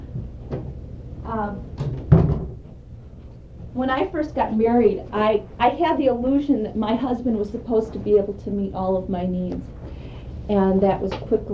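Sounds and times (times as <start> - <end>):
speech: 1.3 - 1.8, 3.8 - 9.8, 10.5 - 11.5
door swinging shut with a solid thud: 1.8 - 2.8.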